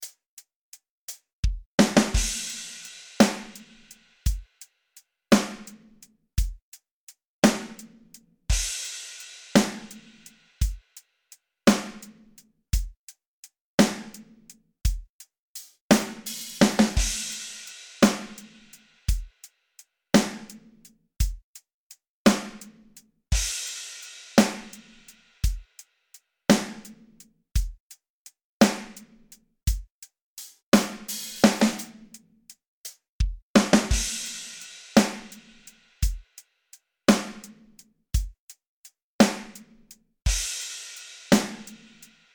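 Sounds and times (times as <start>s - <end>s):
dry drums: 1.1s - 4.5s, 5.3s - 6.6s, 7.4s - 7.9s, 8.5s - 10.8s, 11.7s - 13.0s, 14.9s - 19.4s, 20.2s - 20.6s, 22.3s - 25.8s, 26.5s - 27.0s, 27.6s - 27.9s, 28.6s - 36.4s, 37.1s - 38.5s, 39.2s - 39.7s, 40.3s - 42.2s.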